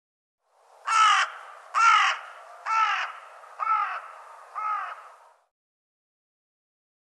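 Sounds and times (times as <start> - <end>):
bird cawing with hoarse crow-like caws: 0.8 - 5.4.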